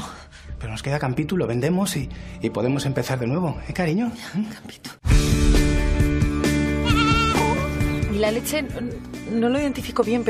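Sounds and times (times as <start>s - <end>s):
speech: 0.6s - 5.5s, 8.2s - 10.2s
male goat bleating: 6.8s - 7.8s.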